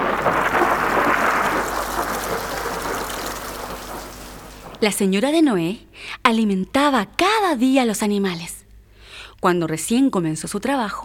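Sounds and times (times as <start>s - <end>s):
heavy rain pouring: 0.0s - 5.0s
speech: 4.8s - 8.6s, 9.4s - 11.0s.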